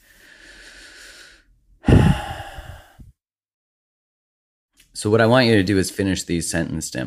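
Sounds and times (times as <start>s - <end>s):
slow deep breath in through the nose and out: 0.0s - 3.2s
speech: 5.0s - 7.0s.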